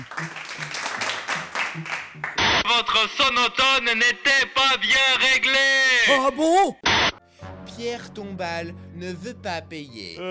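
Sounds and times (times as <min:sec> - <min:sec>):
audience applause: 0:00.0 - 0:02.4
speech: 0:02.8 - 0:06.9, 0:07.8 - 0:10.2.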